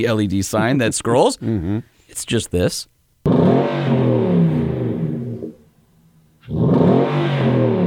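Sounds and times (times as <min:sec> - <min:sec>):
speech: 0:00.0 - 0:02.9
performance car exhaust revving hard with crackling roar: 0:03.3 - 0:05.7, 0:06.4 - 0:07.8.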